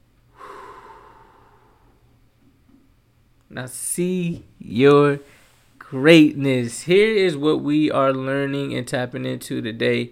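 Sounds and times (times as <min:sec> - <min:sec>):
deep breath in a guided breathing exercise: 0:00.3 - 0:02.2, 0:05.2 - 0:05.8
speech: 0:03.6 - 0:05.3, 0:05.9 - 0:10.1.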